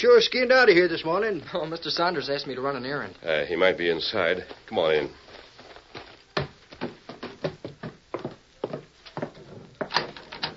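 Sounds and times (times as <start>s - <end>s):
speech: 0.0s - 5.2s
locked wooden door rattled hard: 9.9s - 10.5s.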